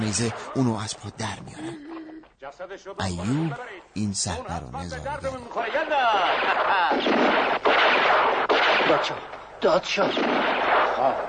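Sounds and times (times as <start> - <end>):
speech: 0.1 - 11.2
gunfire sound effect from a mountain firefight: 5.6 - 11.2.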